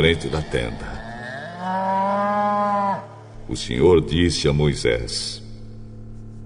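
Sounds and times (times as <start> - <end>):
speech: 0.0 - 1.0, 3.0 - 5.4
ox giving a long low moo: 0.0 - 3.3.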